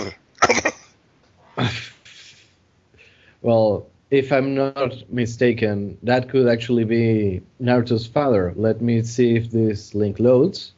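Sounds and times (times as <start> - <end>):
person imitating a horse's raspy cough: 0.0 - 1.0
speech: 1.6 - 1.9, 3.4 - 10.7.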